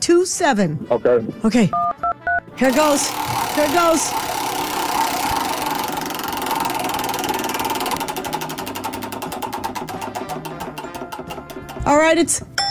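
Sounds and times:
speech: 0.0 - 2.0, 2.6 - 4.4, 11.9 - 12.5
prize wheel spinning with rapid ticking clicks: 1.8 - 12.0.

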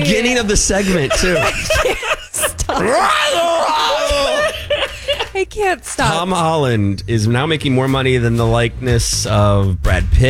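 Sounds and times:
laughter: 0.0 - 6.6
speech: 0.1 - 1.9, 2.7 - 3.4, 5.4 - 10.2
woman screaming into the microphone: 2.7 - 5.3.

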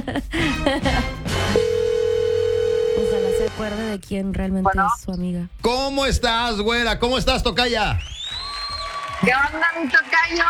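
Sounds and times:
speech: 0.0 - 1.2, 3.4 - 8.2, 9.2 - 10.4
telephone dial tone while placing a call: 1.6 - 3.5.

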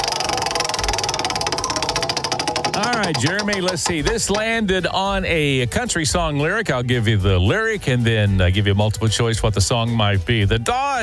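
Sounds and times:
low hum: 0.0 - 4.4
prize wheel spinning during a bar trivia game: 0.0 - 4.6
speech: 3.0 - 11.0.

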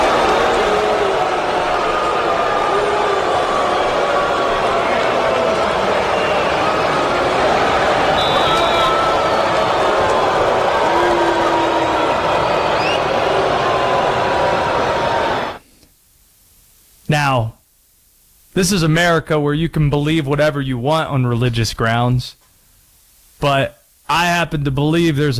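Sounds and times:
huge stadium crowd booing a returning player: 0.0 - 15.6
speech: 18.6 - 22.4, 23.4 - 25.3.

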